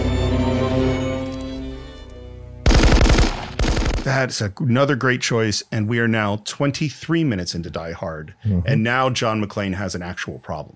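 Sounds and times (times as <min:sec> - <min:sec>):
orchestral music from a movie scene: 0:00.0 - 0:04.1
automatic gunfire from a movie scene: 0:02.6 - 0:04.2
speech: 0:04.1 - 0:10.7.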